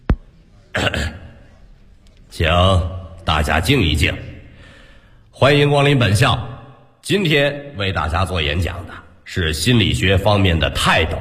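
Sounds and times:
throat clearing by a college dean at a lectern: 0.7 - 1.6
speech: 2.4 - 4.3, 5.4 - 11.1.

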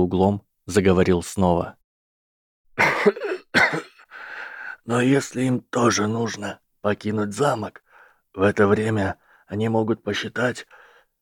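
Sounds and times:
speech: 0.0 - 1.8, 2.8 - 3.9, 4.8 - 7.8, 8.4 - 10.8
loud cough: 2.8 - 4.1.

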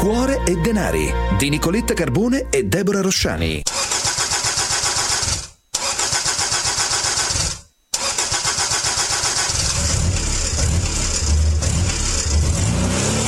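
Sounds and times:
speech: 0.1 - 3.9
car engine cranking and starting: 3.7 - 13.2.

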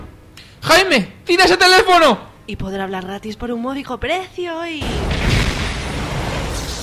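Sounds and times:
speech: 0.8 - 5.1
bomb explosion sound effect: 4.8 - 6.8.

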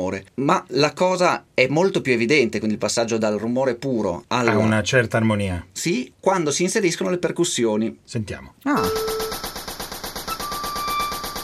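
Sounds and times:
speech: 0.0 - 9.2
machine gun firing rapid bursts: 8.8 - 11.4.

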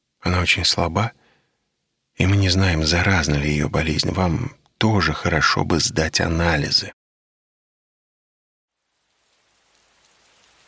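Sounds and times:
speech: 0.2 - 1.2, 2.2 - 7.0
large raindrops drumming on a stretched tarpaulin and on boxes and barrels: 8.8 - 10.6.

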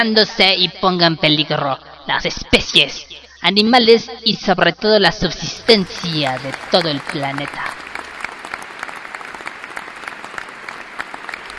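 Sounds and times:
speech: 0.0 - 7.9
applause from many hands for a classmate after a presentation: 5.6 - 11.5.

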